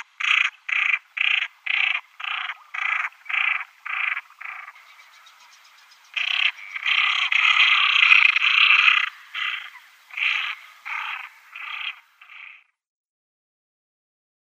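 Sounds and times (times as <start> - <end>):
female common pochard rasping and grating calls: 0.0 - 4.8, 6.2 - 12.6.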